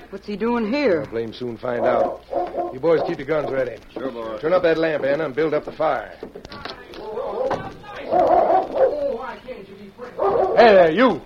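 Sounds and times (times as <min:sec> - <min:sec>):
speech: 0:00.1 - 0:06.6, 0:10.2 - 0:11.2
dog barking: 0:01.8 - 0:03.6, 0:07.3 - 0:09.2, 0:10.2 - 0:10.9.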